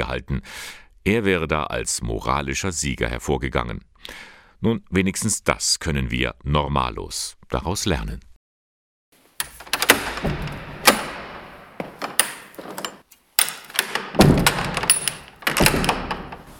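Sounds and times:
speech: 0:00.0 - 0:08.3
heavy cathedral treasury and diocesan museum entrance door in Eichstätt being unlatched and opened: 0:09.4 - 0:16.5
loud metallic clunks and thuds of heavy door: 0:09.4 - 0:16.5
rattling and scraping of heavy door: 0:09.4 - 0:16.5.

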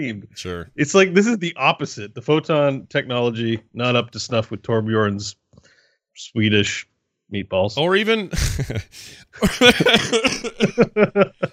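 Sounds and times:
speech: 0:00.0 - 0:05.4, 0:06.2 - 0:11.5
laughter: 0:08.1 - 0:11.5
person coughing: 0:08.4 - 0:10.9.

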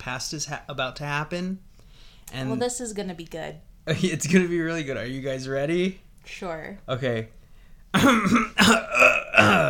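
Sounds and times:
speech: 0:00.0 - 0:01.7, 0:02.3 - 0:07.4, 0:08.0 - 0:09.6
throat clearing: 0:07.9 - 0:09.6.

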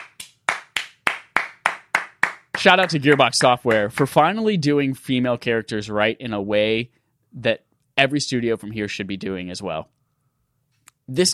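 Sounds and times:
person clapping hands: 0:00.0 - 0:04.2
speech: 0:02.6 - 0:09.9, 0:11.1 - 0:11.3.

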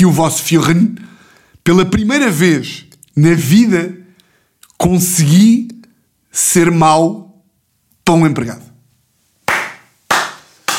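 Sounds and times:
speech: 0:00.0 - 0:04.0, 0:04.8 - 0:05.7, 0:06.3 - 0:07.2, 0:08.1 - 0:08.7
hand claps with echo: 0:09.4 - 0:10.7.

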